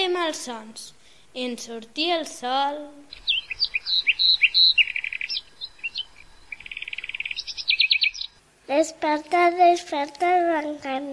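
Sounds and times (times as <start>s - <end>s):
speech: 0.3s - 3.4s, 8.7s - 11.1s
songbird chirping and trilling at sunrise: 2.0s - 8.4s.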